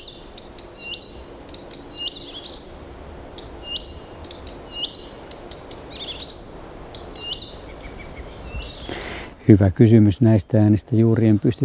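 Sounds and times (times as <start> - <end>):
songbird singing varied high whistles and chirps in a grove: 0.0 - 2.8, 3.6 - 9.4
steady outdoor hiss: 0.0 - 11.6
speech: 9.5 - 11.6.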